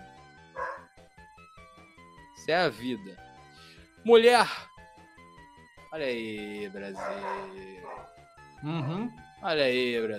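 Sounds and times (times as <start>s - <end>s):
dog barking and yapping: 0.6s - 0.9s, 7.0s - 8.1s
speech: 2.4s - 3.3s, 4.0s - 4.7s, 5.9s - 10.1s.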